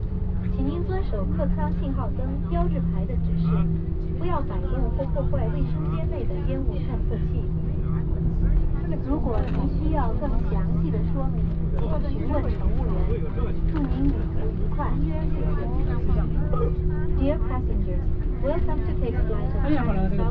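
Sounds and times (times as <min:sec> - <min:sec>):
airplane takeoff at an airport in China: 0:00.0 - 0:20.2.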